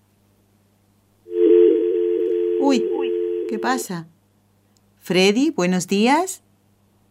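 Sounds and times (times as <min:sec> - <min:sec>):
dropped phone call line tone from New Jersey United States: 0:01.3 - 0:03.9
speech: 0:03.5 - 0:04.2, 0:05.0 - 0:06.4.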